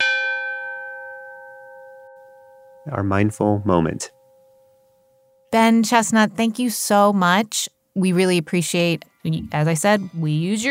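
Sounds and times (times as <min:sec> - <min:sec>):
meditation bell struck with a bright metallic tone: 0:00.0 - 0:06.3
speech: 0:02.8 - 0:04.2, 0:05.5 - 0:10.6.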